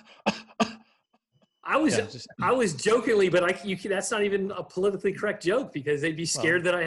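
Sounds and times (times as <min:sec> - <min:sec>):
dry cough: 0:00.0 - 0:01.0
speech: 0:01.7 - 0:06.8.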